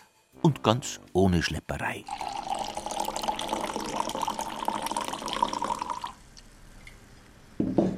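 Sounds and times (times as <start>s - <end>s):
speech: 0.4s - 2.4s
pear cider pouring into a glass: 2.0s - 6.2s.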